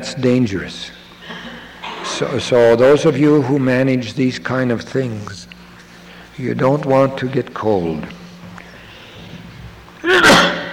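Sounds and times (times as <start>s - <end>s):
speech: 0.0s - 1.0s, 2.2s - 5.5s, 6.4s - 8.2s
man sneezing: 10.0s - 10.7s.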